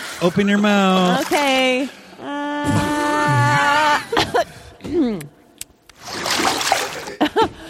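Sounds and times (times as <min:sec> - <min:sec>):
toilet water spat back and forth between people, splashing and sputtering: 0:00.0 - 0:03.7, 0:05.9 - 0:07.2
speech: 0:00.2 - 0:02.9, 0:04.3 - 0:05.4
people groaning and whimpering: 0:02.1 - 0:05.3.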